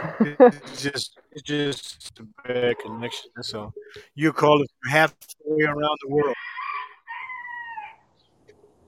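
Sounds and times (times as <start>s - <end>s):
speech: 0.2s - 6.4s
rooster crowing in a village: 6.2s - 8.1s.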